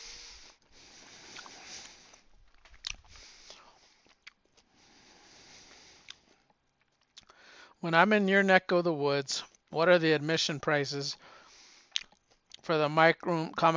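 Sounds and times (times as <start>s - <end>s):
soft mouth noises: 0.1s - 7.4s, 11.8s - 12.7s
chewing and crunching a hard vitamin C tablet: 1.2s - 4.8s, 5.7s - 7.4s, 11.8s - 12.7s
speech: 7.8s - 11.4s, 12.7s - 13.7s.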